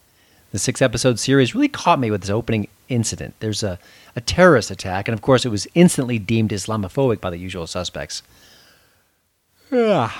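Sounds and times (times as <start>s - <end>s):
speech: 0.5s - 8.5s, 9.7s - 10.1s
person yawning: 9.6s - 10.1s.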